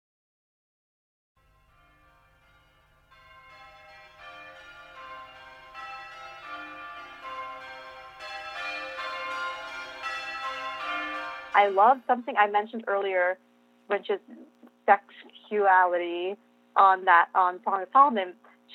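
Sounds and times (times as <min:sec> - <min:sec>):
layered ringing bells opening a piece of music: 0:01.4 - 0:12.9
speech: 0:11.6 - 0:18.7.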